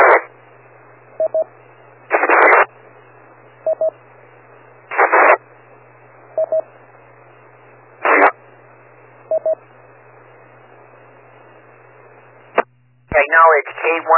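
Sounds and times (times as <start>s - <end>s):
radio static bursts from a transmitter keying up to reach a repeater: 0.0s - 0.4s, 2.1s - 2.7s, 4.9s - 5.5s, 8.0s - 8.4s, 11.2s - 14.1s
faint steady hum: 0.0s - 14.1s
quick pair of electronic beeps: 1.2s - 1.5s, 3.6s - 4.0s, 6.4s - 6.7s, 9.3s - 9.6s.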